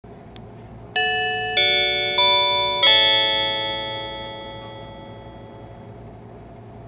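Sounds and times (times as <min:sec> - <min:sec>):
chime: 0:01.0 - 0:05.9.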